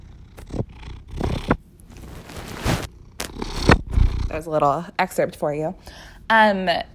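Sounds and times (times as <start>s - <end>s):
cat purring: 0.0s - 4.7s
soft rustling: 1.8s - 3.3s
speech: 4.3s - 6.9s.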